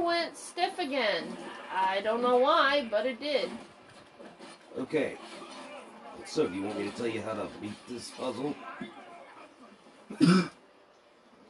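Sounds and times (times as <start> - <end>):
speech: 0.2 - 5.6, 6.2 - 9.0, 10.1 - 10.5
rough cough close to a throat clearing: 10.1 - 10.6.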